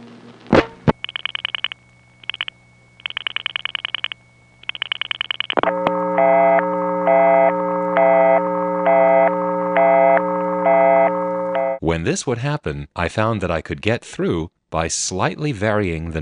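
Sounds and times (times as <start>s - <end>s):
eerie busy signal on a telephone party line: 0.9s - 11.8s
layered electronic drone with evenly spaced pulses: 5.5s - 11.8s
speech: 12.0s - 16.1s.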